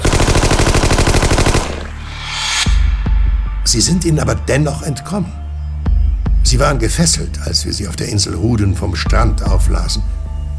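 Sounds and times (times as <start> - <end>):
automatic gunfire fired into the water at sea: 0.0 - 2.0
sharp crack: 1.2 - 3.2
rising rush of noise: 1.7 - 3.9
low rumbling boom: 2.0 - 4.2
speech: 3.7 - 5.4, 6.5 - 10.2.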